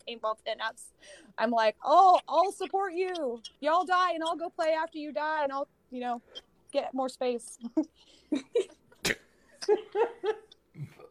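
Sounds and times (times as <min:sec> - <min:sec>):
speech: 0:00.1 - 0:11.0
person laughing: 0:09.6 - 0:11.0.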